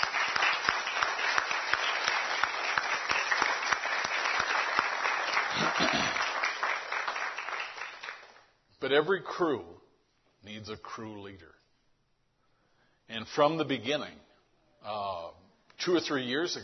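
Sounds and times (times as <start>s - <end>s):
crowd applauding: 0.0s - 8.5s
speech: 8.9s - 9.8s, 10.6s - 11.6s, 13.1s - 16.6s.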